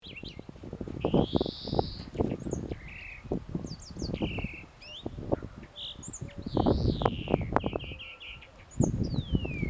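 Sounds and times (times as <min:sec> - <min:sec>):
European greenfinch Chloris chloris calls: 0:00.0 - 0:09.6.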